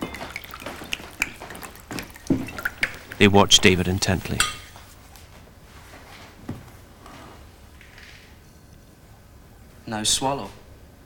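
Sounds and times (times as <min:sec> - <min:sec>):
red wine being poured: 0:00.0 - 0:04.8
speech: 0:03.2 - 0:04.6, 0:09.9 - 0:10.6.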